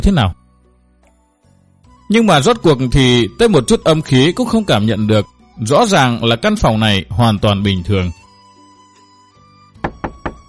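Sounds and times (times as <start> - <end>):
speech: 0.0 - 0.4, 2.1 - 8.2
firm dull knocks on a door: 9.8 - 10.4.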